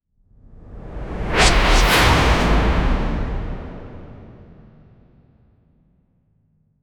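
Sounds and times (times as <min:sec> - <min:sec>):
whoosh transition: 0:00.7 - 0:05.1.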